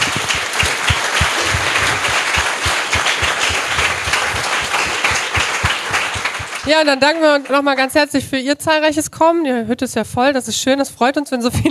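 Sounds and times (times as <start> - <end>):
crowd applauding: 0.0 - 7.9
speech: 6.7 - 11.7.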